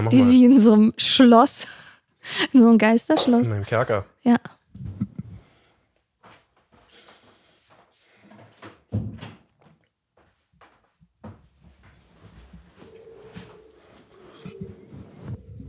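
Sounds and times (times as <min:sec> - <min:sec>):
speech: 0:00.0 - 0:04.9
wooden door being closed: 0:08.7 - 0:09.5.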